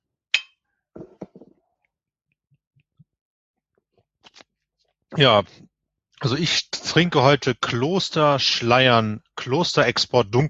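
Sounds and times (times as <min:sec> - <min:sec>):
glass clinking during a toast with dark export beer: 0:00.4 - 0:00.6
speech: 0:05.1 - 0:10.4.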